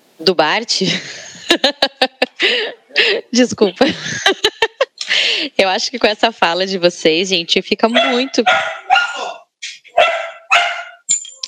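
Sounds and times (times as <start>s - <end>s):
speech: 0.2s - 4.5s, 5.4s - 9.3s
laughter: 0.8s - 2.8s, 3.8s - 5.1s
small dog yapping in high-pitched barks: 7.9s - 11.0s.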